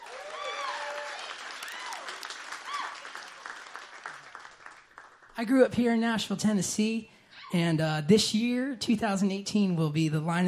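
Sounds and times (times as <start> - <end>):
scattered cheers and whoops: 0.0 - 3.4
audience applauding: 0.0 - 5.4
speech: 5.4 - 10.4.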